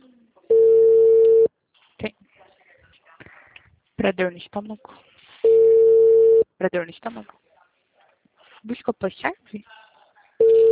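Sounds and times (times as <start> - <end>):
telephone calling tone beep: 0.5 - 1.5, 5.4 - 6.5, 10.4 - 10.7
speech: 4.0 - 5.1, 6.6 - 7.4, 8.6 - 9.8.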